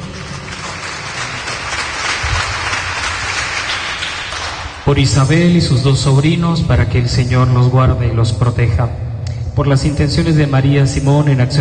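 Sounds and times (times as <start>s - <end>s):
congregation applauding: 0.0s - 4.9s
speech: 4.9s - 11.5s.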